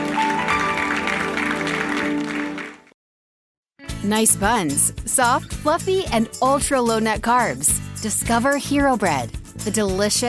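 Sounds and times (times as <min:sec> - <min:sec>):
large audience clapping: 0:00.0 - 0:02.9
speech: 0:04.0 - 0:10.2.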